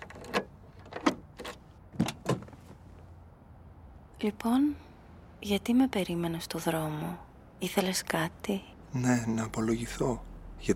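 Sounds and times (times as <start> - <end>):
car door being unlocked and opened: 0.0 - 2.8
speech: 4.2 - 10.7.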